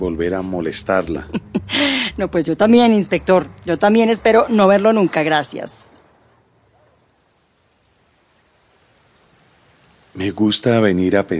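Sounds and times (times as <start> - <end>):
speech: 0.0 - 5.9, 10.2 - 11.3
water flowing in a park stream: 2.9 - 11.3.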